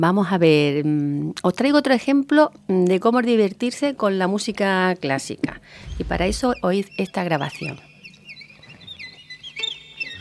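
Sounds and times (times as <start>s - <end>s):
speech: 0.0s - 7.9s
faint low rumble: 5.8s - 6.7s
voice or instrument mimicking a small bird's song with chirps and trills: 6.1s - 10.2s.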